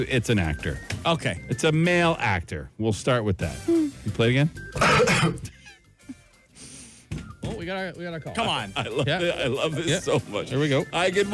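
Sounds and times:
speech: 0.0s - 5.6s, 7.7s - 11.3s
man coughing: 4.8s - 5.7s.

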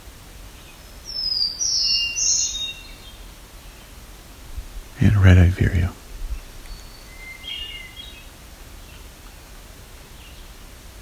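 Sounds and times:
black-throated green warbler singing farther off: 0.0s - 4.3s, 5.0s - 10.7s
black-throated blue warbler singing: 0.6s - 3.9s, 6.3s - 9.0s
speech: 5.0s - 6.0s.

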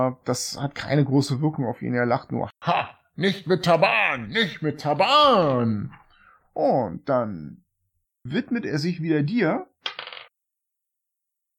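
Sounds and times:
speech: 0.0s - 6.0s, 6.6s - 7.6s, 8.2s - 10.1s
dice clattering across a hard tabletop: 9.8s - 10.3s.

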